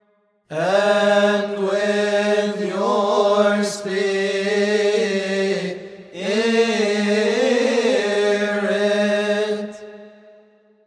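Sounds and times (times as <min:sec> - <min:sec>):
choral response: 0:00.5 - 0:10.4.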